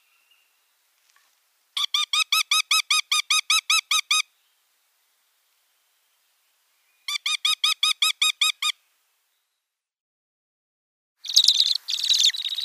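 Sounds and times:
Northern goshawk nestling calling: 0:01.8 - 0:04.2, 0:07.1 - 0:08.8, 0:11.2 - 0:12.6.

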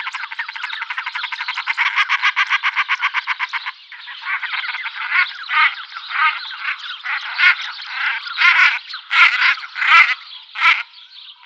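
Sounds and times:
common shelduck calling harsh pulsed notes: 0:00.0 - 0:10.9.

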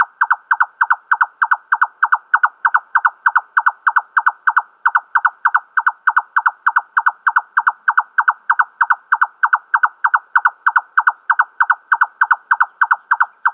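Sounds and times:
male red-necked nightjar display song: 0:00.0 - 0:13.5.

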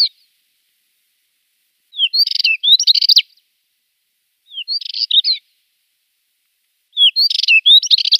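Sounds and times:
Spectacled warbler singing scratchy twittering phrases: 0:00.0 - 0:00.4, 0:01.9 - 0:03.4, 0:04.4 - 0:05.6, 0:06.9 - 0:08.1.

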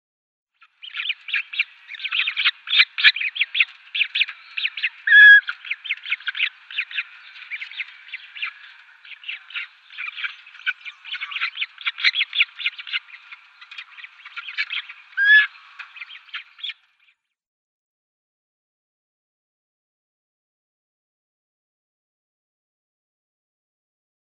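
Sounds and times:
Purple Swamphen downy young calling: 0:00.9 - 0:16.8.

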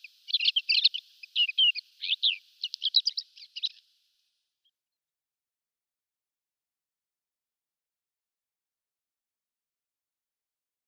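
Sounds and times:
African desert warbler song: 0:00.0 - 0:05.0.

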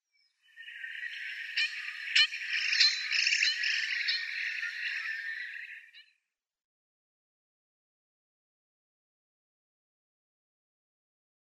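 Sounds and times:
Yellow-headed Blackbird calls: 0:00.2 - 0:06.1.

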